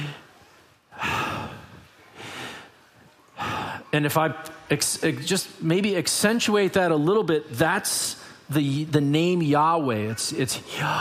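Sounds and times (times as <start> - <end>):
group breathing in and out during a guided exercise: 0.0 - 3.9
speech: 3.9 - 10.9.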